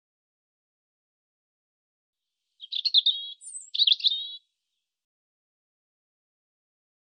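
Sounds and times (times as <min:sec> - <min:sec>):
European robin warbling: 0:02.6 - 0:04.4.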